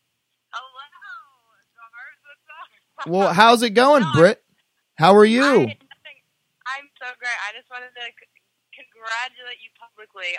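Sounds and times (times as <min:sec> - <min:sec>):
speech: 0:03.0 - 0:04.4, 0:05.0 - 0:05.8, 0:09.0 - 0:10.3
voice through a phone speaker: 0:03.0 - 0:04.4, 0:05.0 - 0:05.8.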